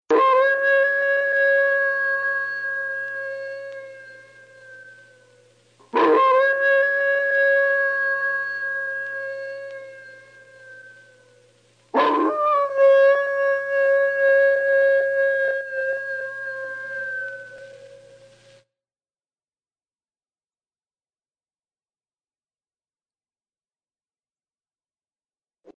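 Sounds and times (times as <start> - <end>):
wolf howling: 0.1 - 18.4.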